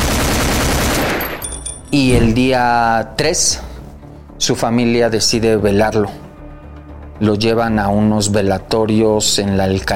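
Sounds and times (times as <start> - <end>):
rapid burst of automatic gunfire: 0.0 - 1.4
speech: 1.9 - 3.7, 4.4 - 6.2, 7.2 - 9.9.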